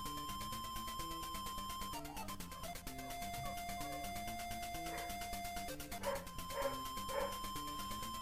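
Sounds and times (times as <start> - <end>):
bright bouncy chiptune-style game music: 0.0 - 8.2
dog barking in the house: 4.9 - 5.2, 6.0 - 7.4.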